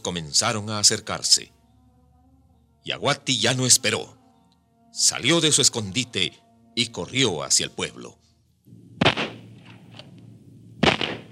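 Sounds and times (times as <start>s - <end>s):
speech: 0.1s - 1.6s, 2.8s - 4.2s, 4.9s - 8.8s
low steady rumble: 8.7s - 11.3s
gunshots: 9.0s - 10.1s, 10.8s - 11.3s.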